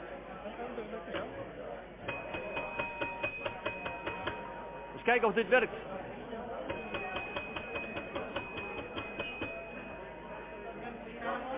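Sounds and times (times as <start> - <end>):
murmur of voices chatting in a room: 0.0 - 11.5
speech: 0.6 - 2.5, 5.0 - 6.0
small bell ringing: 2.1 - 5.1, 6.7 - 11.0.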